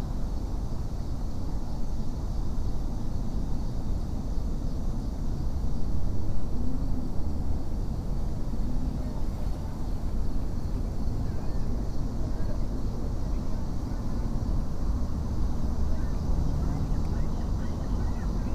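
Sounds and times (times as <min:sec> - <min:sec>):
low rumble of traffic or aircraft beside a river near a city: 0:00.0 - 0:18.5
faint murmur of voices: 0:08.2 - 0:18.5.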